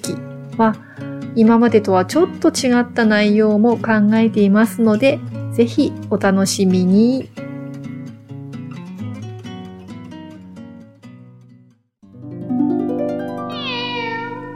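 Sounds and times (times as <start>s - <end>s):
speech: 0.1s - 7.4s
short musical jingle: 12.1s - 14.5s
cat meowing with a rising drawn-out cry: 13.5s - 14.5s.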